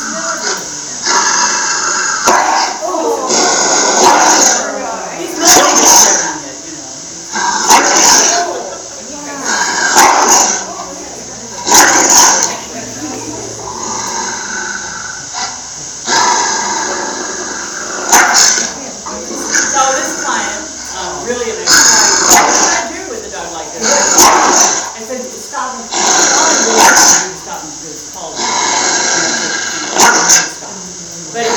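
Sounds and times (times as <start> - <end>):
dog growling while guarding its food: 0.0 - 6.5, 7.2 - 25.0, 25.8 - 27.4, 28.2 - 30.7, 31.4 - 31.5
dog barking sharply while guarding its food: 2.2 - 2.8, 3.9 - 4.6, 7.6 - 8.5, 9.7 - 10.7, 11.6 - 12.6, 18.1 - 18.8, 21.7 - 22.9, 23.8 - 25.0, 26.6 - 27.3, 29.9 - 30.6.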